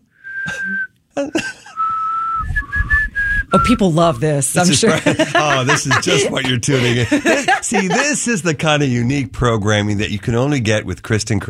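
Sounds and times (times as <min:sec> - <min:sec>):
person whistling a tune: 0:00.2 - 0:00.9, 0:01.8 - 0:03.8
speech: 0:00.4 - 0:01.6, 0:03.6 - 0:11.4
laughter: 0:00.5 - 0:01.8, 0:04.6 - 0:08.8.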